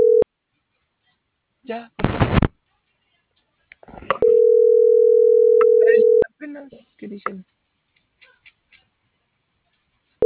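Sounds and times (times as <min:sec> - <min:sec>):
telephone dial tone while a number is being dialed: 0:00.0 - 0:00.2, 0:04.2 - 0:06.2
speech: 0:01.7 - 0:02.4, 0:07.1 - 0:07.6.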